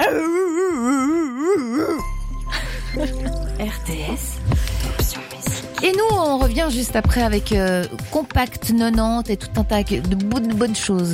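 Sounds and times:
person imitating a dog howling: 0.0s - 2.0s
music jingle: 2.0s - 7.6s
speech: 6.4s - 11.1s.

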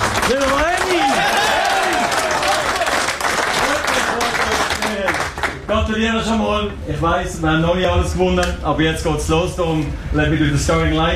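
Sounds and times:
team clapping in a locker room: 0.0s - 5.7s
speech: 0.3s - 0.7s, 5.9s - 11.1s
team shouting and whooping in a locker room: 0.8s - 3.1s.

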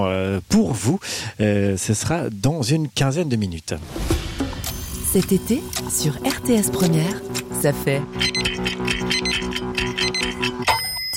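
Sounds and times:
speech: 0.0s - 4.3s, 5.1s - 8.5s
sustained musical tones: 4.1s - 10.6s
clock ticking: 4.4s - 11.1s.

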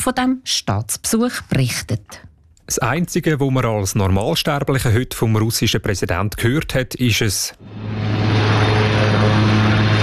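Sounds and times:
speech: 0.0s - 8.3s
helicopter arriving for a state visit: 7.6s - 10.0s.

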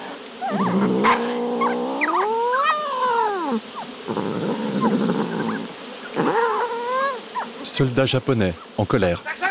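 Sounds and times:
angry cat yowling in wavering wails: 0.4s - 7.6s
speech: 0.5s - 1.8s, 7.8s - 9.4s.

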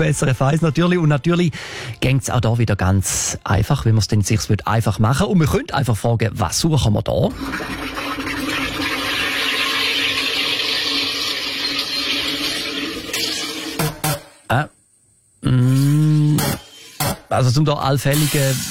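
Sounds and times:
speech: 0.0s - 7.8s, 14.5s - 14.8s, 15.4s - 16.6s, 17.3s - 18.6s
water carbonator fizzing drinking water: 7.3s - 14.2s, 18.0s - 18.6s.

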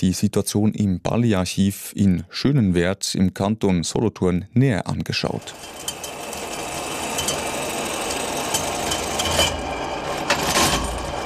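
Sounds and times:
speech: 0.0s - 6.0s
old machine for measuring the area of leather pieces rattling and whirring: 5.4s - 11.2s.

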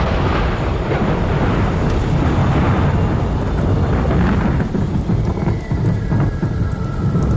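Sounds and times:
deep rolling thunder: 0.0s - 7.3s
heavy rain pouring: 0.0s - 7.3s.

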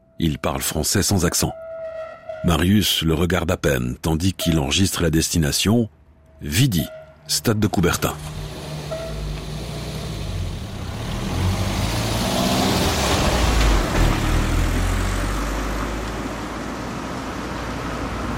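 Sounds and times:
taxi road noise: 0.0s - 18.3s
speech: 0.2s - 1.7s, 2.4s - 8.4s
taxi car engine humming while driving: 7.3s - 18.3s.

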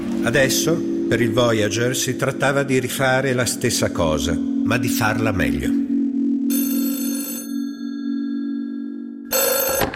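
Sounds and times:
steady low tone: 0.0s - 9.3s
speech: 0.2s - 5.8s
telephone bell ringing: 6.5s - 9.9s.

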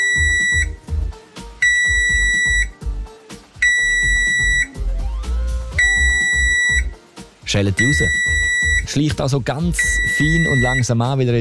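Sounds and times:
oven timer alarm beeping: 0.0s - 0.8s, 1.6s - 2.8s, 3.6s - 4.8s, 5.8s - 6.9s, 7.8s - 8.9s, 9.8s - 10.9s
speech: 7.5s - 8.3s, 8.9s - 11.3s.

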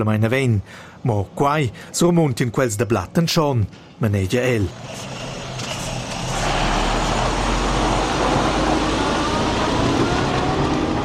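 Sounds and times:
speech: 0.0s - 5.2s
heavy truck engine roar and tire noise driving past: 4.7s - 11.0s.

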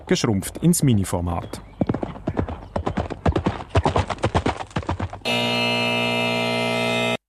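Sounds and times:
horse hooves galloping: 0.0s - 5.3s
speech: 0.1s - 1.8s
loud steady buzzer: 5.3s - 7.2s.

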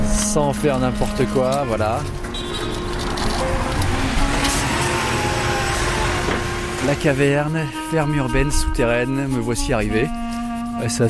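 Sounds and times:
car engines rumbling on a busy street: 0.0s - 7.8s
dense city traffic while riding a scooter: 0.0s - 7.9s
speech: 0.4s - 2.2s, 6.8s - 10.2s, 10.8s - 11.0s.

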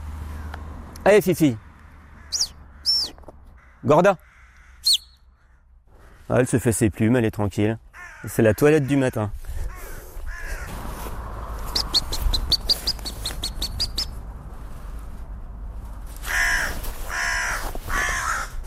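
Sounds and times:
speech: 1.0s - 1.6s, 3.8s - 4.3s, 6.3s - 9.4s
harsh raspy crow cawing: 1.8s - 6.4s, 7.9s - 10.8s, 16.2s - 18.6s
quicker higher bird chirps: 2.3s - 3.2s, 4.7s - 5.3s, 11.7s - 14.2s.

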